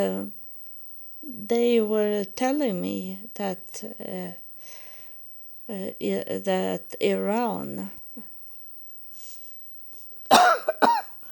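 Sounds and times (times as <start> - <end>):
speech: 0.0 - 0.4, 1.2 - 4.8, 5.7 - 8.3
loud harsh coughs: 10.3 - 11.2.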